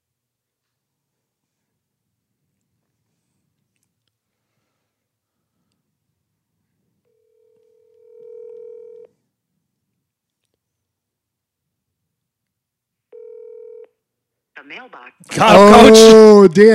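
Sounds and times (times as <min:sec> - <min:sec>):
telephone ringing tones as a call is placed: 0:07.1 - 0:09.2, 0:13.1 - 0:14.0
speech: 0:14.6 - 0:16.7.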